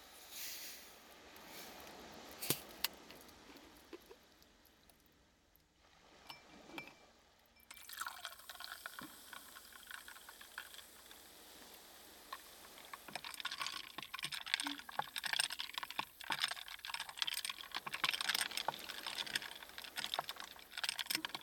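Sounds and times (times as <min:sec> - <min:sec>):
sharp glassy clinks: 0:06.3 - 0:07.0
carbonated water poured into a glass over ginger syrup: 0:07.6 - 0:11.3, 0:12.3 - 0:21.4
bright crackling fizz of carbonated bubbles: 0:07.7 - 0:21.4.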